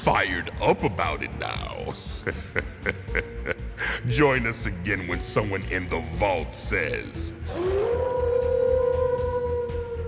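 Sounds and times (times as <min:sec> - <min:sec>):
speech: 0:00.0 - 0:08.1
low rumbling background: 0:00.0 - 0:10.0
laughter: 0:01.0 - 0:05.2
wolf howling: 0:07.5 - 0:10.0.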